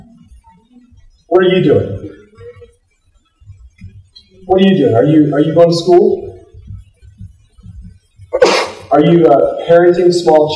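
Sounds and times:
soft low rhythmic thumping: 0:00.0 - 0:10.5
speech: 0:01.3 - 0:02.2, 0:04.5 - 0:06.3, 0:09.0 - 0:10.5
single loud sneeze: 0:08.4 - 0:08.9.

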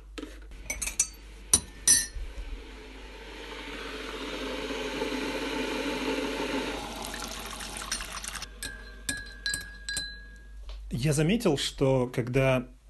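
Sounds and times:
cup and spoon clinking while making tea: 0:00.7 - 0:02.2, 0:07.7 - 0:10.6
liquid pouring while making tea: 0:02.8 - 0:08.5
speech: 0:11.0 - 0:12.8.

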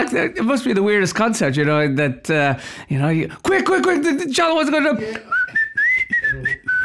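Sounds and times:
speech: 0:00.0 - 0:05.4
person breathing: 0:02.6 - 0:02.9, 0:05.0 - 0:05.3
person whistling a sustained high tune: 0:05.1 - 0:06.8.

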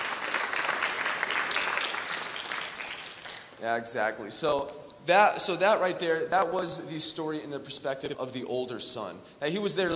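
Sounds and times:
audience applause: 0:00.0 - 0:03.6
speech: 0:03.6 - 0:09.9.

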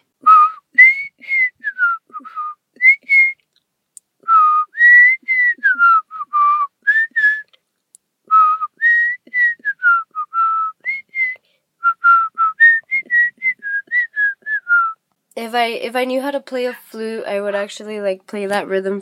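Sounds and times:
person whistling a catchy commercial jingle: 0:00.2 - 0:03.4, 0:04.3 - 0:07.5, 0:08.3 - 0:15.0
speech: 0:15.5 - 0:19.0.

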